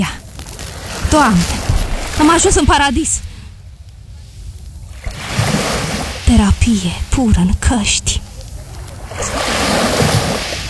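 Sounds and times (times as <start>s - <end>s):
speech: 0.0s - 0.2s, 1.1s - 1.6s, 2.2s - 3.3s, 6.3s - 8.3s
sea waves breaking on the shore: 0.2s - 10.6s.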